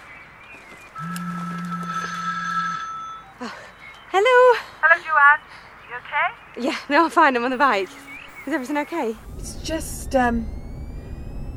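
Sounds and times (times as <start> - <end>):
speech: 0.6 - 1.2, 4.2 - 10.6
woman's mobile phone ringing: 1.0 - 3.4, 7.5 - 11.5.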